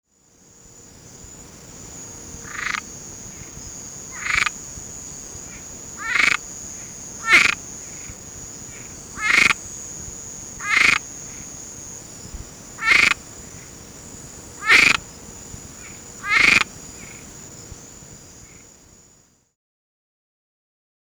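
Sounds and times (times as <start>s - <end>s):
amphibians of Cuba calling: 1.9s - 18.7s.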